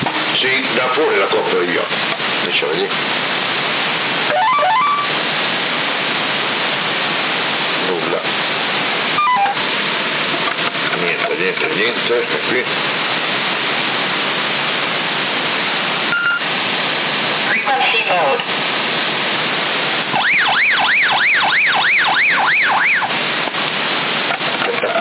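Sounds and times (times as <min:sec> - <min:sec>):
CB radio static hiss: 0:00.0 - 0:24.9
speech: 0:00.8 - 0:03.2, 0:11.5 - 0:13.1
police siren wailing through CB radio: 0:04.3 - 0:05.2, 0:09.2 - 0:09.6, 0:20.2 - 0:23.2.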